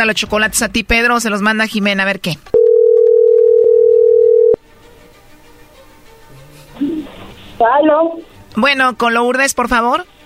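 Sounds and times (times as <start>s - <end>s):
speech: 0.0s - 2.6s, 7.6s - 10.1s
telephone dial tone as a call is placed: 2.6s - 4.6s.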